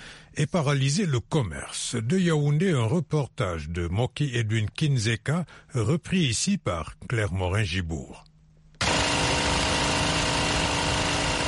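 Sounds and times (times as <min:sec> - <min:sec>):
speech: 0:00.4 - 0:08.3
generator powering a bakery flour mill in Yaoundé: 0:08.8 - 0:11.4.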